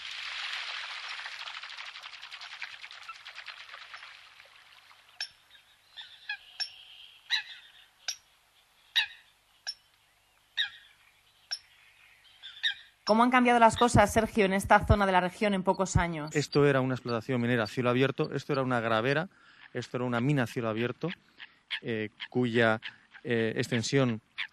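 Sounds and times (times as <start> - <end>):
steady rushing water-like noise: 0.0 - 5.4
Eurasian coot giving short, sharp, clipped calls: 5.2 - 8.3, 8.9 - 9.8, 10.6 - 11.7, 19.4 - 24.5
speech: 13.1 - 24.3.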